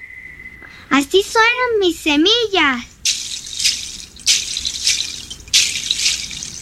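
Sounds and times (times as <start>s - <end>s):
speech: 0.9s - 2.9s
wooden claves struck together in a steady beat: 3.1s - 6.5s.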